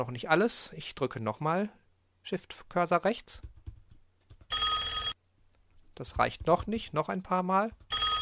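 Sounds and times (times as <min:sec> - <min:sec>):
speech: 0:00.0 - 0:03.5, 0:06.0 - 0:07.8
telephone bell ringing with bright metallic overtones: 0:04.5 - 0:05.2, 0:07.9 - 0:08.2.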